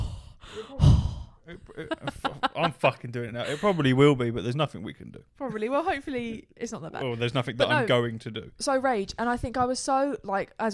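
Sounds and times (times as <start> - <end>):
loud breath pushed out through the mouth into a microphone: 0.0 - 1.4
speech: 1.5 - 10.7.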